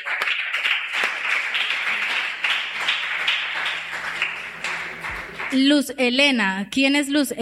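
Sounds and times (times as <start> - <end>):
audience applauding to welcome a newcomer: 0.0 - 5.6
speech: 5.5 - 7.4.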